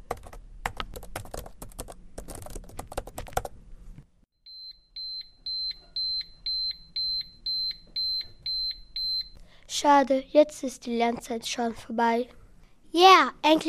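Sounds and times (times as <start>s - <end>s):
computer keyboard typing: 0.0s - 3.5s
regular series of shrill electronic beeps: 4.5s - 9.4s
speech: 9.8s - 12.4s, 13.0s - 13.6s.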